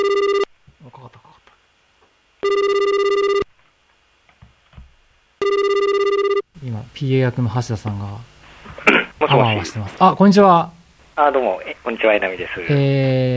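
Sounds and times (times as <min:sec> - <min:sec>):
speech: 0:00.0 - 0:00.3, 0:07.0 - 0:08.3, 0:09.3 - 0:13.3
telephone call ringing: 0:00.0 - 0:00.5, 0:02.4 - 0:03.5, 0:05.4 - 0:06.5.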